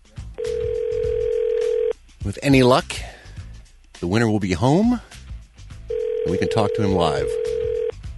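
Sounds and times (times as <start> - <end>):
steady unbroken telephone line tone: 0.4 - 1.9, 5.9 - 7.9
speech: 2.4 - 3.1, 4.0 - 5.1, 6.3 - 7.4.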